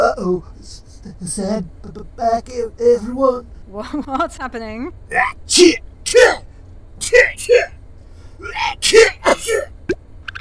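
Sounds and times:
speech: 0:00.2 - 0:07.8, 0:08.4 - 0:09.8
person sneezing loudly: 0:06.1 - 0:06.4, 0:08.5 - 0:09.7.

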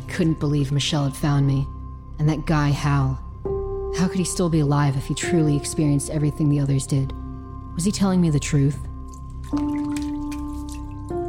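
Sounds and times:
speech: 0:00.2 - 0:03.2, 0:03.9 - 0:07.2, 0:07.8 - 0:10.0
faint dripping patter: 0:08.9 - 0:11.2
water running and splashing into a sink: 0:09.2 - 0:11.2.

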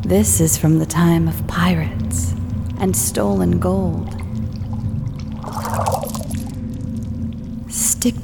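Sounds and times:
speech: 0:00.0 - 0:04.2, 0:08.0 - 0:08.2
constant low hollow drone in a cave: 0:01.2 - 0:07.7
water trickling and burbling in a cave: 0:01.4 - 0:07.7.

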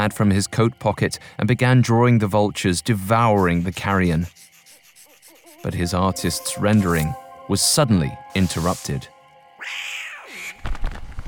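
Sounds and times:
speech: 0:00.0 - 0:04.4, 0:05.6 - 0:09.9
cat yowling: 0:09.6 - 0:10.6.

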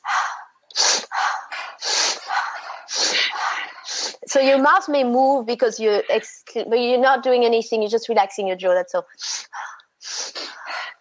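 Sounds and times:
activation breathing in through the nose and out through the mouth: 0:00.0 - 0:04.3, 0:09.2 - 0:10.9
speech: 0:04.4 - 0:09.3.

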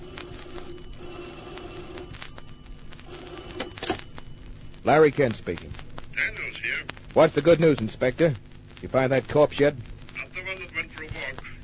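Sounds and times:
old-fashioned telephone bell ringing: 0:00.0 - 0:04.5
speech: 0:04.8 - 0:05.8, 0:07.1 - 0:09.9.

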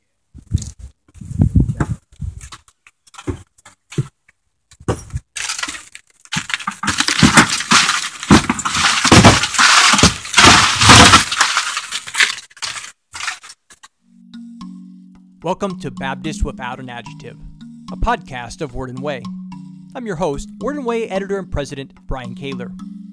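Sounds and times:
boot footsteps crunching over broken glass: 0:04.9 - 0:13.8
speech: 0:15.5 - 0:22.9.

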